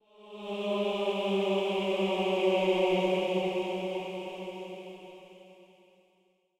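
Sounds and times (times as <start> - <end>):
eerie ambient hymn game music: 0.0 - 6.0.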